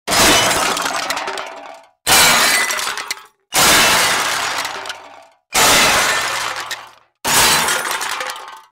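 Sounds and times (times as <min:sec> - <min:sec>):
junk falling: 0:00.1 - 0:08.7.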